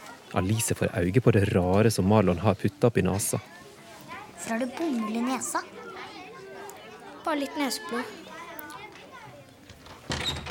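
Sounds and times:
children chattering in a classroom: 0.0 - 10.4
speech: 0.3 - 3.6, 4.4 - 5.9, 7.2 - 8.2
classroom door opening as the teacher comes in: 9.6 - 10.4.

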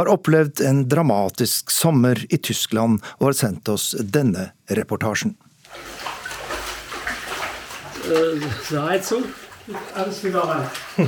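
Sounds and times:
speech: 0.0 - 6.1, 8.1 - 11.0
sloshing of knee-deep flood water in a flooded house basement: 5.7 - 11.0.

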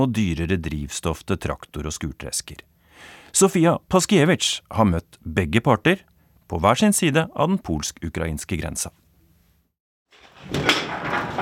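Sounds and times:
speech: 0.0 - 9.0, 10.4 - 11.2
grain warehouse door opening near the Polish-Ukrainian border: 10.1 - 11.4.

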